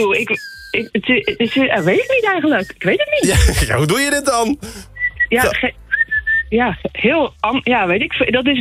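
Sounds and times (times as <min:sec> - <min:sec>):
loud human whistle to call cats inside: 0:00.0 - 0:02.8, 0:04.9 - 0:06.5
laughter: 0:00.0 - 0:04.8
speech: 0:00.0 - 0:05.8, 0:06.5 - 0:08.5.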